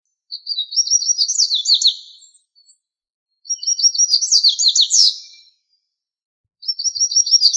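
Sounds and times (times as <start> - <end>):
bird twittering with trills: 0.3 - 2.8, 3.4 - 5.6, 6.6 - 7.5.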